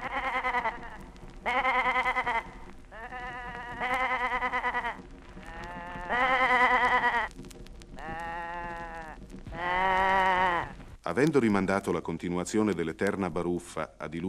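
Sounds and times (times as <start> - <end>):
goats and sheep bleating: 0.0 - 10.8
speech: 11.2 - 14.2.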